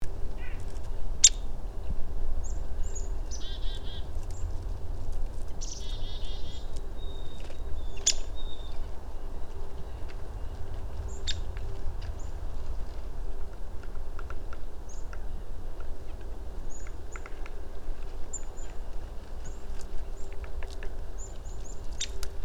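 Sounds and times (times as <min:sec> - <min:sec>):
steady low background hum: 0:00.0 - 0:22.4
downy woodpecker giving sharp high pik calls: 0:03.0 - 0:04.4, 0:05.6 - 0:08.8, 0:11.1 - 0:11.5, 0:21.2 - 0:22.2.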